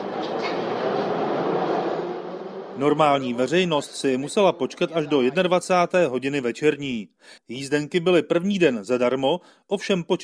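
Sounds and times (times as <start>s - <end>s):
metro train departing: 0.0s - 4.0s
speech: 2.8s - 10.2s
laughter: 3.8s - 5.9s.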